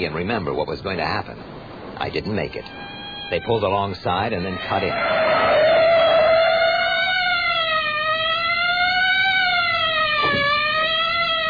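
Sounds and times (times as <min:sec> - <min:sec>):
speech: 0:00.0 - 0:05.6
low rumble of traffic: 0:00.0 - 0:11.4
police siren wailing: 0:02.4 - 0:11.4.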